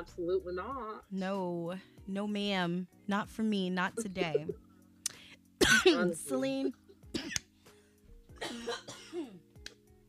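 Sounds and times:
speech: 0.0 - 4.6, 5.6 - 7.4
woman coughing and choking: 5.6 - 7.5, 8.4 - 9.5.

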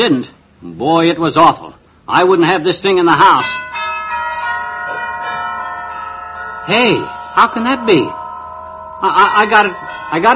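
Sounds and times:
speech: 0.0 - 3.7, 6.7 - 8.2, 9.0 - 10.3
new set of church bells in a church down the block ringing: 3.2 - 10.3.

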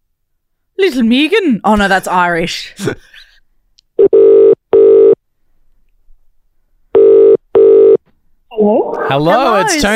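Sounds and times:
speech: 0.8 - 3.1, 8.6 - 9.9
phone ringback tone on a call to Scotland: 4.0 - 5.2, 7.0 - 8.0.

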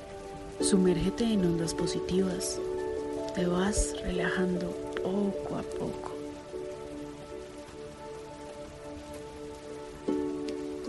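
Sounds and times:
steady rain: 0.0 - 10.8
speech: 0.6 - 2.8, 3.4 - 6.1.

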